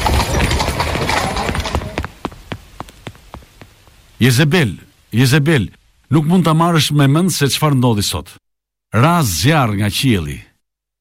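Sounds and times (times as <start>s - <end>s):
hooves of a horse pulling a black carriage clip-clopping on the road: 0.0s - 4.2s
heavy rain: 0.0s - 6.0s
speech: 4.2s - 10.5s.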